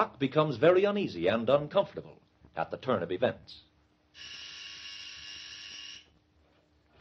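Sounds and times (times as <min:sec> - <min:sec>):
speech: 0:00.0 - 0:04.4
hospital call buzzer pressed by a patient: 0:04.1 - 0:06.2.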